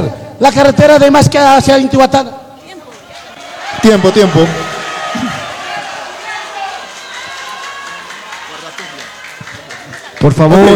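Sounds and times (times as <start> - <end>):
speech: 0.0 - 2.4, 3.8 - 4.7, 10.2 - 10.7
crowd applauding: 2.7 - 10.7.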